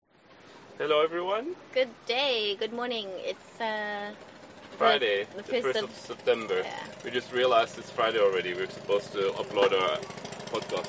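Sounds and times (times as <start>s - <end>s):
speech: 0.8s - 10.8s
fishing boat long-shaft engine chugging near Cabedelo, Brazil: 2.6s - 10.8s.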